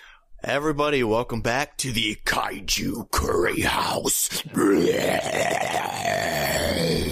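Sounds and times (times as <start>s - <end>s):
speech: 0.5s - 7.1s
person retching and gagging with a strained guttural heave: 4.4s - 7.1s.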